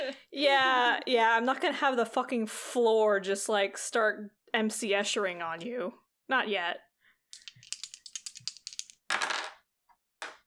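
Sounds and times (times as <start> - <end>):
speech: 0.1 - 7.4
dice shaken and landing: 7.4 - 9.6.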